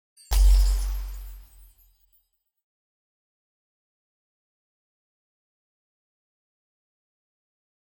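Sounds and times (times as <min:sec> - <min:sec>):
teleport end sound effect: 0:00.3 - 0:01.7.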